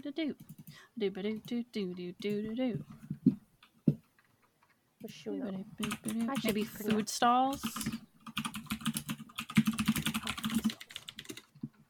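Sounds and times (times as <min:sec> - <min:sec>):
speech: 0:00.0 - 0:03.0, 0:05.1 - 0:08.0
typing on a keyboard: 0:00.4 - 0:01.6, 0:05.8 - 0:11.8.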